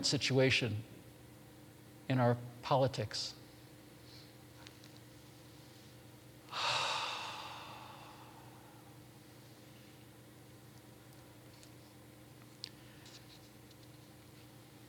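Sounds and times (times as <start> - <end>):
speech: 0.0 - 1.0, 2.1 - 3.4
single long deliberate exhale: 6.5 - 9.0.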